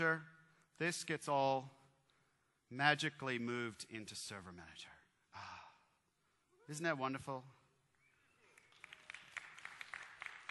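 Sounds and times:
speech: 0.0s - 1.8s, 2.7s - 5.5s, 6.7s - 7.6s
scattered clapping from a small part of an audience in a large room: 8.0s - 10.5s.

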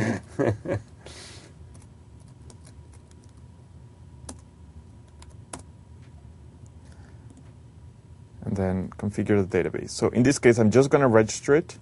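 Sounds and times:
low steady hum: 0.0s - 11.8s
speech: 0.4s - 0.9s, 8.6s - 11.8s
computer keyboard typing: 1.7s - 3.4s, 4.2s - 5.7s.

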